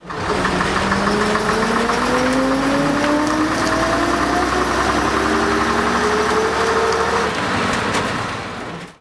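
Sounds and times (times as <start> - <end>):
AEC diesel engine: 0.0 - 8.9.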